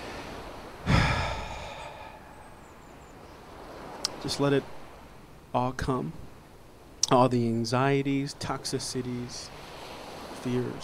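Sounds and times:
person exhaling during a guided breathing exercise: 0.8s - 2.6s
speech: 4.2s - 4.8s, 5.5s - 6.3s, 7.1s - 9.7s, 10.4s - 10.8s.

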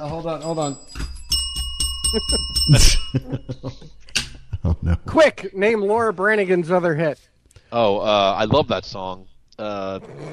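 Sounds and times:
speech: 0.0s - 1.1s, 2.1s - 4.0s, 4.6s - 10.3s
bell ringing with a bright metallic tone: 0.0s - 4.2s
laughter: 2.1s - 5.3s.

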